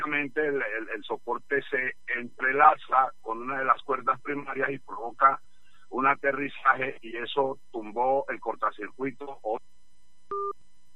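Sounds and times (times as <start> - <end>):
faint hum: 0.0 - 10.9
speech: 0.1 - 9.7
two-pitch telephone beep after a dropped call: 10.3 - 10.6.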